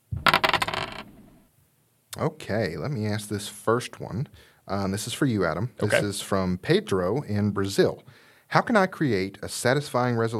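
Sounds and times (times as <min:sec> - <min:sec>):
dice rattling across a hard surface: 0:00.2 - 0:01.2
speech: 0:02.2 - 0:10.3.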